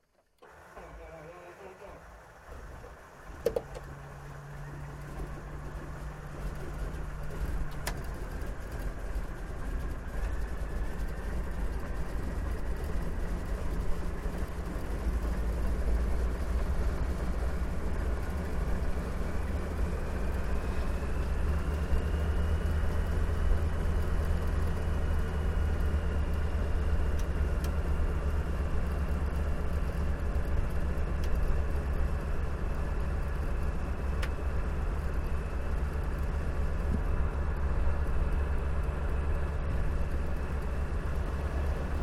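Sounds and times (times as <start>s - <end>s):
CAC CA-25 Winjeel fighter trainer engine startup heard from interior: 0.3s - 42.0s.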